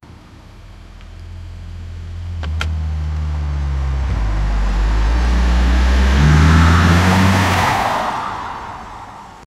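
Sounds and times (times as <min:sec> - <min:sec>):
vehicle accident: 0:02.0 - 0:09.4.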